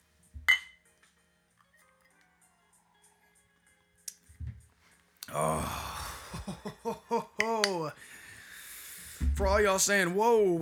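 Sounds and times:
glasses clinking in a toast: 0.5s - 0.8s
laughter: 5.3s - 8.1s
speech: 6.4s - 8.2s, 9.4s - 10.6s
low thud: 9.2s - 9.8s.

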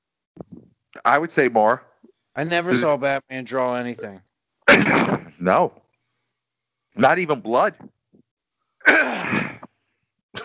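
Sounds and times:
speech: 1.0s - 5.8s, 7.0s - 8.0s
harsh throat clearing: 4.7s - 5.7s, 8.8s - 9.7s.

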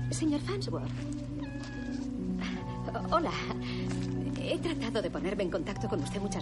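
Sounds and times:
speech: 0.1s - 1.3s, 2.9s - 6.4s
kitten meowing: 1.3s - 2.1s.

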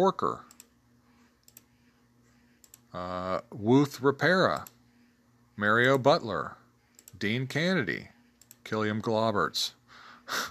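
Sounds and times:
speech: 0.0s - 0.5s, 2.9s - 4.8s, 5.6s - 6.6s, 7.2s - 8.1s, 8.7s - 10.4s
quiet steady hum: 0.0s - 10.4s
faint computer mouse clicks on a web page: 0.5s - 0.7s, 1.4s - 1.7s, 2.6s - 2.9s, 4.5s - 4.8s, 6.9s - 7.2s, 8.4s - 8.6s.

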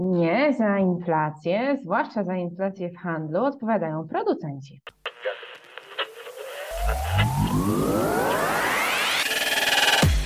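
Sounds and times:
speech: 0.0s - 5.4s
crackly radio interference: 4.9s - 10.1s
radio receiver warbling with rising sweeping tones: 4.9s - 10.1s.

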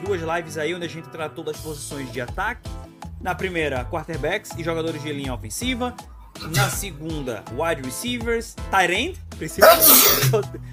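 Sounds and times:
speech: 0.1s - 10.7s
person sneezing: 9.6s - 10.4s.

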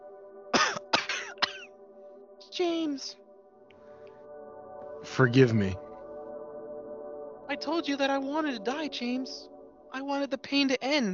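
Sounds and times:
woman coughing: 0.5s - 1.7s
speech: 2.5s - 3.2s, 5.1s - 5.8s, 7.5s - 11.1s.

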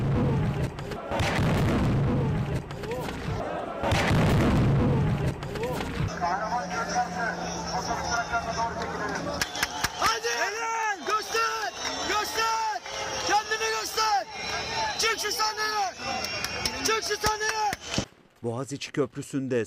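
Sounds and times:
heavy artillery cannon blasts: 0.0s - 6.1s
people shouting: 2.2s - 4.2s, 4.8s - 17.9s
droning hum: 6.1s - 10.5s
speech: 18.4s - 19.6s.

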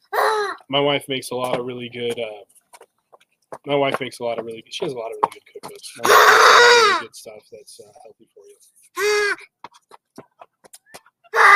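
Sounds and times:
speech: 0.7s - 2.6s, 3.6s - 9.6s
geese honking: 5.9s - 7.1s, 9.0s - 9.4s.

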